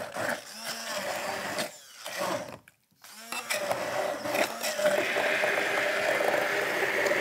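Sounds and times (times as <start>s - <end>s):
blender pureeing strawberries: 0.0s - 7.2s.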